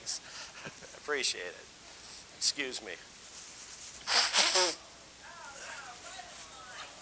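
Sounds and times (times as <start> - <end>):
speech: 1.1 - 1.7, 2.4 - 3.1
loud wet nasal sniffle with a runny nose: 4.0 - 4.8.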